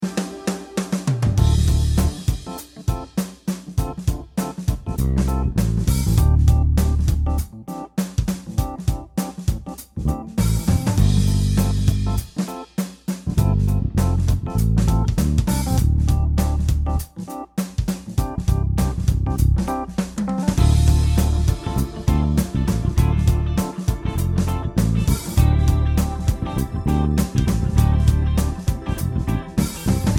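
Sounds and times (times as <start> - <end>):
chill music: 0.0 - 30.1.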